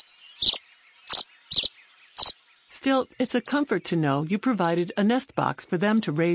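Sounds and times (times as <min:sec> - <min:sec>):
tree swallows giving bright chirping calls: 0:00.0 - 0:04.9
speech: 0:02.8 - 0:06.3.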